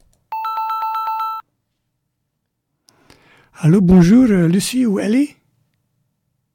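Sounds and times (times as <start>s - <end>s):
ringing tone of an outgoing phone call: 0.3s - 1.5s
speech: 3.6s - 5.4s.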